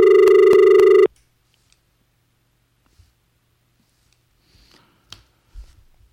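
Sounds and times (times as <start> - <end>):
telephone line ringing during a radio phone-in call: 0.0 - 1.1.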